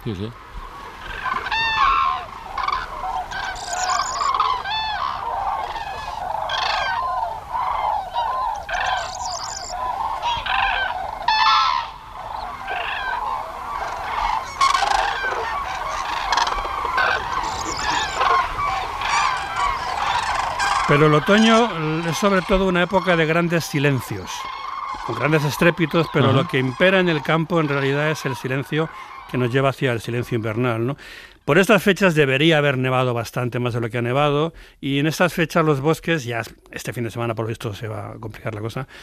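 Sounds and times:
speech: 0:00.0 - 0:00.4, 0:20.9 - 0:39.0
flock of hundreds of cranes calling overhead in autumn: 0:00.4 - 0:31.2.

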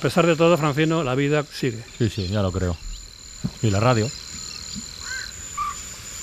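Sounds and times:
speech: 0:00.0 - 0:04.8
faint marsh ambience: 0:00.0 - 0:06.2
high-pitched insect drone: 0:00.0 - 0:06.2
little bittern giving short low croaking calls: 0:00.4 - 0:06.2.

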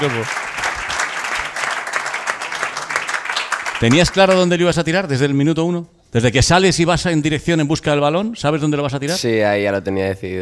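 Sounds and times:
speech: 0:00.0 - 0:00.6, 0:03.8 - 0:10.4
many hands clapping: 0:00.0 - 0:04.7.

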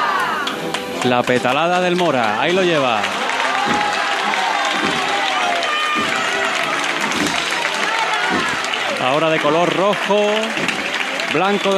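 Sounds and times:
dense crowd cheering and shouting at a procession: 0:00.0 - 0:11.7
speech: 0:01.0 - 0:03.9, 0:09.0 - 0:11.7
regular low thumps: 0:03.4 - 0:09.0.

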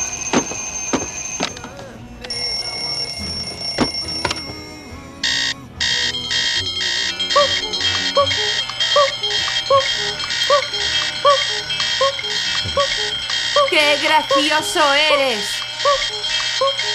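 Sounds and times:
shrill alarm clock ringing: 0:00.0 - 0:16.9
speech: 0:13.8 - 0:16.0.

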